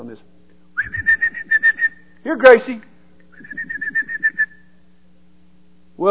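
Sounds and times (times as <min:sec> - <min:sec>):
speech: 0:00.0 - 0:01.1, 0:02.2 - 0:03.8
person whistling to call a dog: 0:00.8 - 0:02.1, 0:03.3 - 0:04.7.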